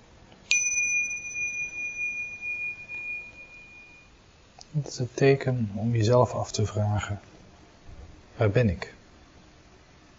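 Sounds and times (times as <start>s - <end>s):
small meditation bell struck during a silent meditation: 0.5s - 4.3s
speech: 4.7s - 7.3s, 8.4s - 9.0s.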